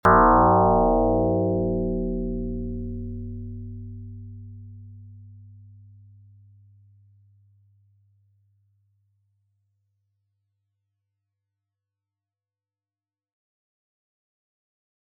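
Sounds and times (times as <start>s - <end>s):
gong: 0.0s - 5.7s.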